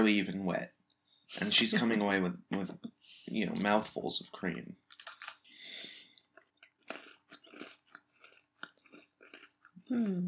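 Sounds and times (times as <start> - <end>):
speech: 0.0 - 4.9, 9.9 - 10.2
crunchy chewing of an Oreo cookie: 4.9 - 9.9
person humming: 9.9 - 10.2.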